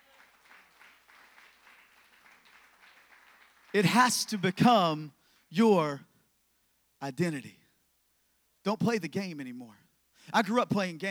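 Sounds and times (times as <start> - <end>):
congregation applauding: 0.0 - 4.7
speech: 3.7 - 6.1, 7.0 - 7.6, 8.6 - 11.0.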